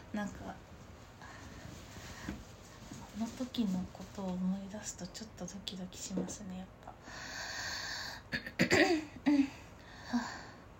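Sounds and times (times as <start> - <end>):
speech: 0.1 - 0.7, 3.2 - 7.3
person with a sore throat clearing throat: 8.3 - 9.5.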